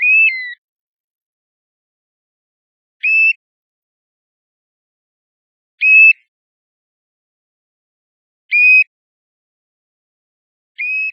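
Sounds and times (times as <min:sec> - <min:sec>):
European golden plover flight calls: 0:00.0 - 0:00.6, 0:03.0 - 0:03.4, 0:05.8 - 0:06.3, 0:08.5 - 0:08.9, 0:10.8 - 0:11.1.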